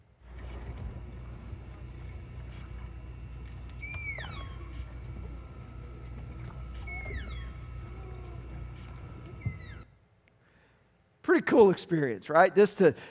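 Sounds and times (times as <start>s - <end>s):
steady low engine-like drone: 0.0s - 9.9s
animals calling underwater with high swooping whistles: 0.1s - 8.2s
murmuring water: 0.2s - 9.9s
speech: 11.3s - 13.0s.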